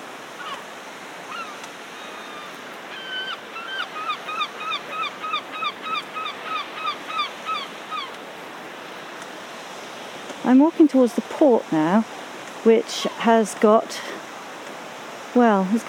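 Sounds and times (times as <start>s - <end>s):
surf washing: 0.0s - 15.8s
seagulls calling by the sea: 0.4s - 8.2s
speech: 10.5s - 14.2s, 15.4s - 15.8s.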